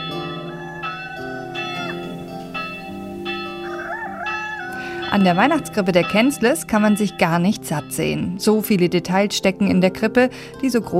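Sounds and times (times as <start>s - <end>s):
church bells ringing in layered overlapping peals: 0.0s - 9.8s
speech: 5.1s - 10.9s.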